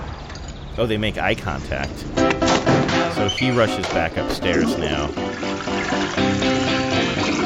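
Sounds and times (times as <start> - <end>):
speech: 0.8 - 2.4, 3.2 - 6.0
toilet flushing: 2.7 - 7.4.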